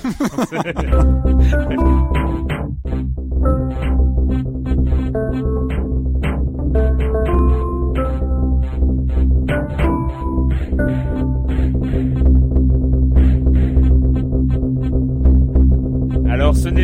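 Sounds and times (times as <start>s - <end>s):
laughter: 0.0s - 2.0s
speech: 0.1s - 3.0s
rapid layered electronic blips of a puzzle video game: 0.8s - 12.4s
low droning hum of a puzzle video game: 0.8s - 16.8s.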